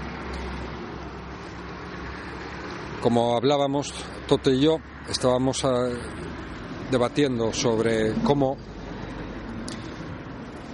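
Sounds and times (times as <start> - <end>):
road traffic rumble at the north face of an old protected building: 0.0 - 10.7
speech: 3.0 - 8.8.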